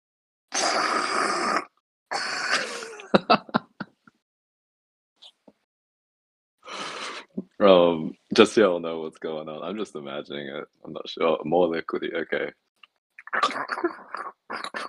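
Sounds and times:
person imitating nose blowing with their voice: 0:00.5 - 0:02.8
laughter: 0:02.6 - 0:04.0
speech: 0:07.6 - 0:12.6, 0:13.3 - 0:14.1.

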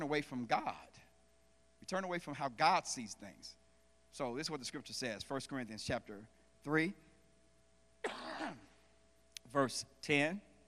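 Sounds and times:
speech: 0:00.0 - 0:01.0, 0:01.8 - 0:07.0, 0:09.5 - 0:10.5
man coughing: 0:08.0 - 0:08.8.

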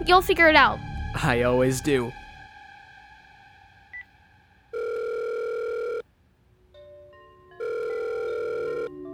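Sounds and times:
speech: 0:00.0 - 0:02.2
telephone call ringing to a voicemail box: 0:04.8 - 0:06.0, 0:07.6 - 0:09.1.

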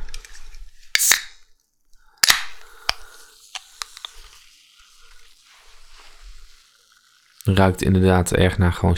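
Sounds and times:
can of orange-flavoured soda being cracked open: 0:00.0 - 0:01.5, 0:02.2 - 0:05.4
orange-flavoured soda fizzing: 0:02.2 - 0:08.4
speech: 0:07.5 - 0:08.9.

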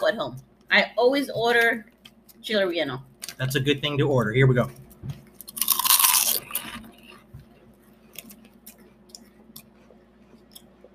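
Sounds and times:
speech: 0:00.0 - 0:05.2
plain potato chip crunching: 0:05.4 - 0:06.8
faint scattered chewing crackles: 0:05.4 - 0:07.3, 0:08.1 - 0:10.9.

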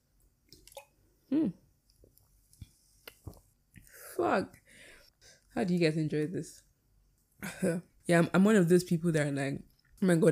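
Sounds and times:
person sipping an alcoholic drink: 0:00.5 - 0:01.6
speech: 0:01.3 - 0:01.6, 0:04.2 - 0:04.6, 0:05.6 - 0:06.7, 0:07.4 - 0:10.3.

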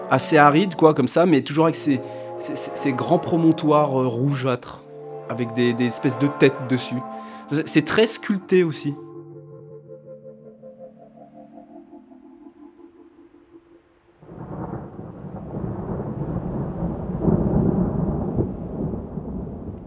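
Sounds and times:
speech: 0:00.1 - 0:09.1
dense loud roar of rain: 0:14.2 - 0:19.8
low rolling thunder over arid mesa country: 0:14.2 - 0:19.8.

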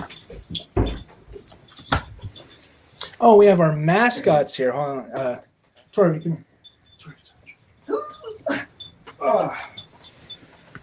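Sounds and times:
speech: 0:00.5 - 0:00.8, 0:03.2 - 0:06.5
dog whimpering: 0:07.0 - 0:09.8.

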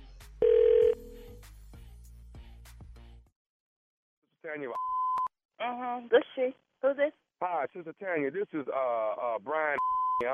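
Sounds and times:
telephone ring tone: 0:00.4 - 0:01.1
speech: 0:04.5 - 0:04.9, 0:05.6 - 0:10.3.

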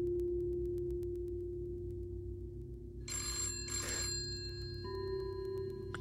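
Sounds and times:
steady low hum: 0:00.0 - 0:05.9
red wall telephone ringing in a bare sterile room: 0:03.0 - 0:05.9.

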